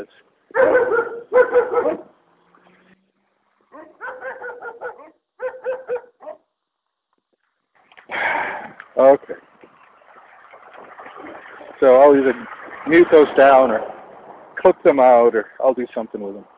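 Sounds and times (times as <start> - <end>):
speech: 0.0 - 2.0, 11.8 - 13.9, 14.6 - 16.5
dog barking in yappy barks: 0.5 - 2.1, 3.7 - 6.5.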